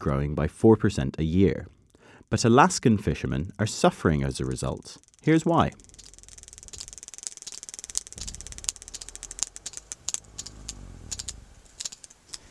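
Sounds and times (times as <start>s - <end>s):
speech: 0.0s - 5.9s
sperm whale clicking while stealing fish: 3.5s - 12.4s.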